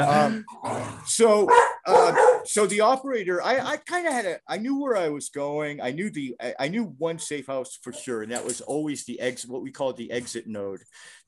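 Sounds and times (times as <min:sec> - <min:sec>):
speech: 0:00.0 - 0:11.2
dogs barking: 0:01.5 - 0:02.5.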